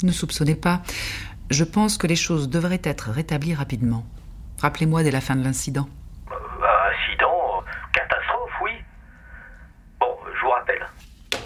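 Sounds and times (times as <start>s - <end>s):
speech: 0.0s - 6.0s
voice through a band-limited telephone line: 6.2s - 9.0s, 10.0s - 11.0s.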